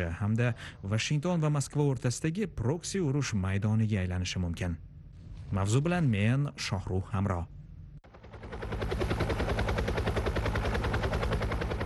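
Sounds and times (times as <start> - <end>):
speech: 0.0 - 4.9, 5.5 - 7.6
helicopter rotor chop: 8.0 - 11.8.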